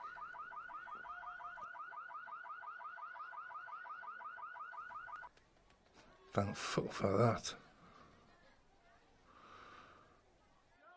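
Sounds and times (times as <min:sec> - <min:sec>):
car alarm warbling: 0:00.0 - 0:05.3
speech: 0:06.3 - 0:07.6.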